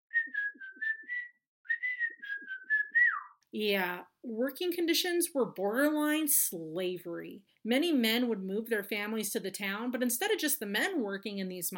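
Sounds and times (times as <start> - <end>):
person whistling a bright bouncy tune: 0.1 - 3.4
speech: 3.5 - 11.7.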